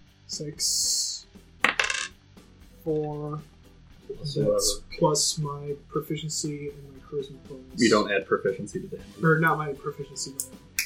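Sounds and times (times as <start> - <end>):
speech: 0.3 - 1.3, 2.8 - 10.8
dice rolled for damage during a tabletop game rattling across a hard table: 1.6 - 2.1.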